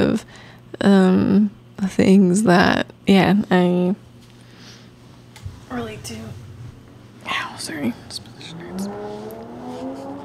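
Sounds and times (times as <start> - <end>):
speech: 0.1 - 4.0, 5.7 - 6.4, 7.3 - 9.3
loud car engine revving and passing by outside: 8.4 - 10.2.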